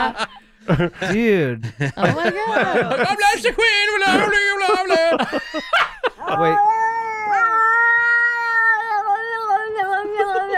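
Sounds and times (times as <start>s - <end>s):
laughter: 0.0s - 6.6s
speech: 0.0s - 6.8s
two cats yowling at each other: 6.3s - 10.5s.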